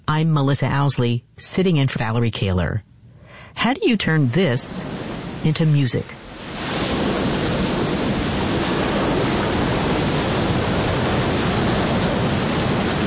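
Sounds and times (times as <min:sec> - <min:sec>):
speech: 0:00.1 - 0:02.9, 0:03.6 - 0:06.3
ocean surf washing onto a shore: 0:03.6 - 0:13.0.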